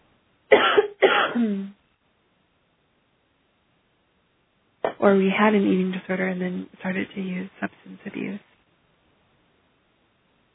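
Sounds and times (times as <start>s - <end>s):
harsh coughs with a throaty voiced rasp: 0.5s - 1.7s
speech: 1.4s - 1.8s, 5.0s - 8.5s.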